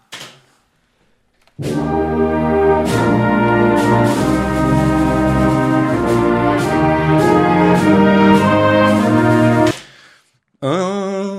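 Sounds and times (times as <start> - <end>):
full orchestra playing a national anthem: 1.6 - 9.8.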